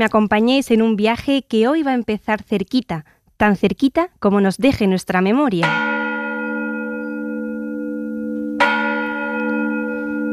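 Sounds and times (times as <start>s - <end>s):
speech: 0.0s - 5.9s
church bell ringing: 5.6s - 10.3s.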